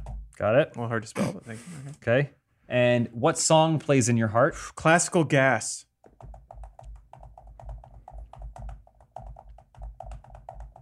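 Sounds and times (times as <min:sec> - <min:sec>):
speech: 0:00.4 - 0:05.9
typing on a keyboard: 0:06.0 - 0:10.7.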